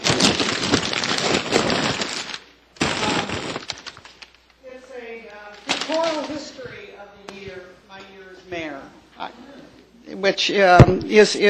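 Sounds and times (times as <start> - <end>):
gift wrapping paper being torn off a present: 0.0 - 4.6, 5.5 - 6.6
speech: 10.3 - 11.4.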